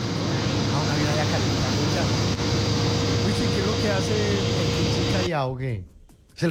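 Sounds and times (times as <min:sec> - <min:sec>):
aircraft engines roaring at an airport in Medellín: 0:00.0 - 0:05.3
speech: 0:05.4 - 0:06.4.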